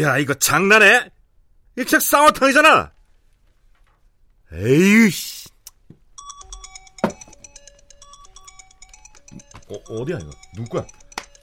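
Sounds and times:
speech: 0:00.0 - 0:01.2, 0:01.8 - 0:03.0, 0:04.5 - 0:05.5, 0:09.7 - 0:11.0
rustling: 0:02.9 - 0:04.4
mobile phone ringtone with repeating electronic melody: 0:06.2 - 0:11.4.

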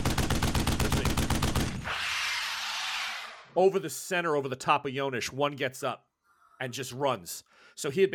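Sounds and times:
machine gun fire: 0:00.0 - 0:02.1
speech: 0:03.6 - 0:08.1.

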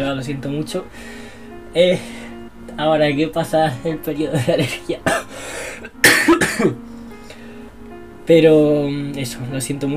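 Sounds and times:
speech: 0:00.0 - 0:05.2, 0:06.6 - 0:06.9, 0:08.3 - 0:09.9
person coughing during allergy season: 0:04.6 - 0:05.3, 0:06.0 - 0:06.8.

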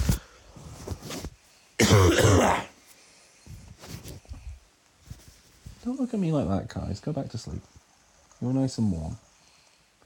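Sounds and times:
speech: 0:01.8 - 0:02.7, 0:05.8 - 0:07.8, 0:08.4 - 0:09.2
person coughing: 0:01.8 - 0:02.8
throat clearing: 0:01.8 - 0:02.8.

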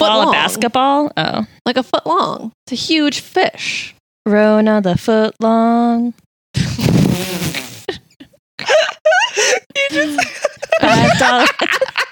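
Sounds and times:
speech: 0:00.0 - 0:07.6, 0:08.6 - 0:12.1
short low buzzy fart: 0:06.6 - 0:07.9
a couple of people giggling and laughing breathily: 0:08.1 - 0:12.1.

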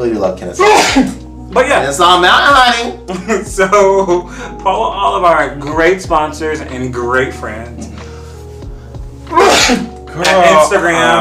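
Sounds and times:
speech: 0:00.0 - 0:07.9, 0:09.7 - 0:11.1
sneeze: 0:00.6 - 0:01.2, 0:09.3 - 0:09.9.

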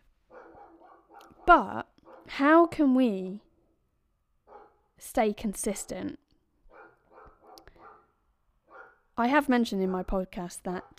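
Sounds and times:
neighbour's dog barking: 0:00.3 - 0:02.8, 0:04.5 - 0:04.9, 0:06.7 - 0:09.1, 0:10.8 - 0:10.9
speech: 0:01.5 - 0:03.5, 0:05.0 - 0:06.2, 0:09.2 - 0:10.9.

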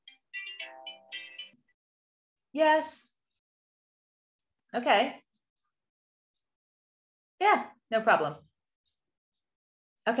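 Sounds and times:
mobile phone ringtone electronic melody of gliding tones: 0:00.0 - 0:01.7
speech: 0:02.5 - 0:03.1, 0:04.7 - 0:05.2, 0:07.4 - 0:08.4.

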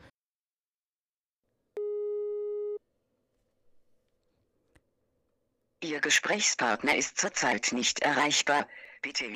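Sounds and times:
telephone signal tone as a call is placed: 0:01.8 - 0:02.8
speech: 0:05.8 - 0:09.3.

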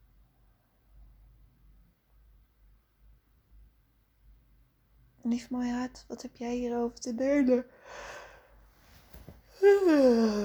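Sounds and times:
speech: 0:05.2 - 0:08.2, 0:09.6 - 0:10.4
person yawning with a breathy intake of air: 0:09.6 - 0:10.4.

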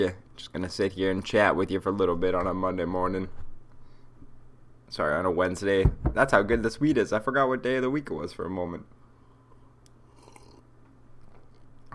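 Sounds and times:
speech: 0:00.0 - 0:03.4, 0:04.9 - 0:09.0
low steady hum: 0:00.0 - 0:11.9
soft slurping sips of coffee: 0:10.0 - 0:10.7
swallow of coffee: 0:10.0 - 0:10.7.

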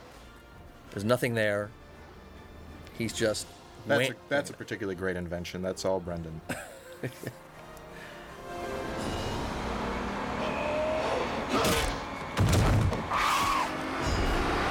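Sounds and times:
speech: 0:01.0 - 0:01.8, 0:03.0 - 0:07.4
double-decker bus engine droning under a bridge: 0:08.2 - 0:12.4, 0:13.0 - 0:14.6
double-decker bus scraping through a bridge with crunching bangs: 0:11.5 - 0:13.7.

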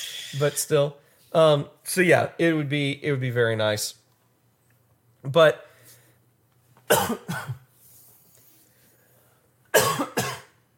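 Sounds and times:
speech: 0:00.3 - 0:04.0, 0:05.2 - 0:05.7, 0:06.9 - 0:07.6
person with a nagging cough coughing harshly: 0:06.9 - 0:07.7, 0:09.7 - 0:10.6.

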